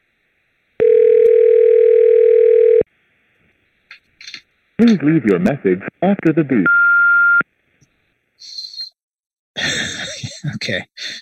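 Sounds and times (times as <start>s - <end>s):
telephone ringback tone while calling a 24-hour art studio: 0.8s - 2.8s
speech: 4.8s - 6.7s, 10.7s - 11.1s.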